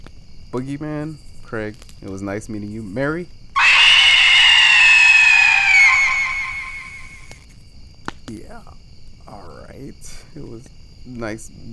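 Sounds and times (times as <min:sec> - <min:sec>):
speech: 0:00.5 - 0:03.4, 0:09.8 - 0:11.7
woman screaming: 0:03.6 - 0:07.4.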